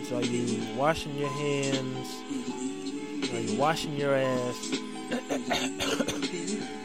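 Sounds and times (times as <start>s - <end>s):
speech: 0.1s - 2.7s, 3.3s - 6.1s
person coughing with throat-clearing rasp: 5.1s - 6.4s.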